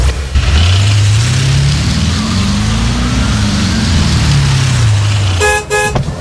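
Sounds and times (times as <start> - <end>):
car engine revving: 0.0 - 6.1
car horn honking: 2.8 - 6.1.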